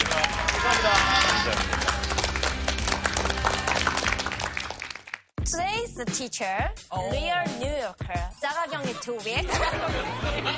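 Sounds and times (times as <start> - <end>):
roomful of people applauding after a special lecture: 0.0 - 5.2
laughter: 0.2 - 2.0, 8.5 - 10.5
speech: 6.0 - 10.5.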